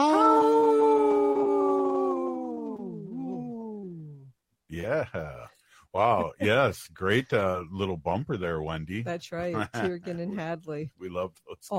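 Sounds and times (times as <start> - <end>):
single wolf howling: 0.0 - 4.3
laughter: 4.8 - 5.4, 6.0 - 7.5, 9.5 - 10.6
speech: 4.8 - 11.7.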